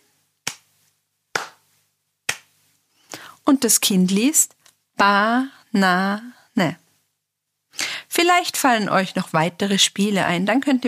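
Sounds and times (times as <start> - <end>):
hand claps marking syllables: 0.4 - 0.7, 1.3 - 1.7, 2.3 - 2.6
speech: 3.5 - 6.8, 8.2 - 10.8.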